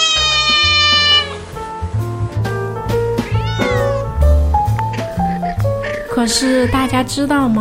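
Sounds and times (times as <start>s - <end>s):
cat meowing: 0.0s - 1.5s, 3.2s - 4.1s, 5.8s - 7.0s
steady low musical backing: 0.0s - 7.5s
speech: 6.2s - 7.5s.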